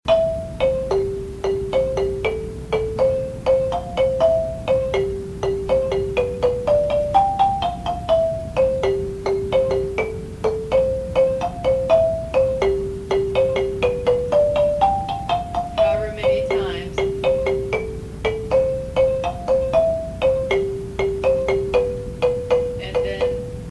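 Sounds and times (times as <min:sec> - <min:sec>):
marimba: 0:00.1 - 0:23.6.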